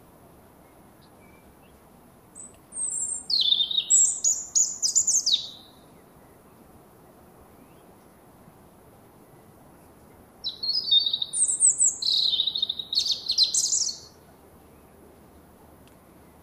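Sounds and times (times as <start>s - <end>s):
European robin Erithacus rubecula singing high scratchy warbled phrases: 2.4s - 5.9s, 10.4s - 14.2s.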